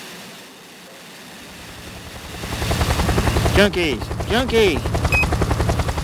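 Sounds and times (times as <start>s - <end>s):
yellow helicopter rotor flying over East Los Angeles: 1.6s - 6.0s.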